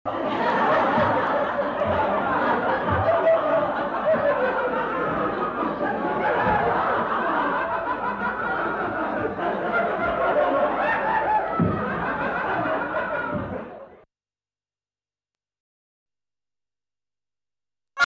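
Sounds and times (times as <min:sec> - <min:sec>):
continuous laughter: 0:00.1 - 0:14.1.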